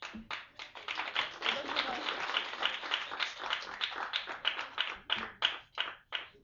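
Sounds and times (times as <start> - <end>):
applause: 0.0 - 6.4.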